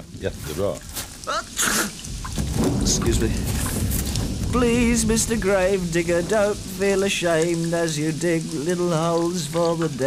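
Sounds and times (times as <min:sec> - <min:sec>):
speech: 0:00.2 - 0:02.0, 0:02.8 - 0:03.9, 0:04.5 - 0:10.0
loud sneeze in a played song: 0:01.3 - 0:02.0.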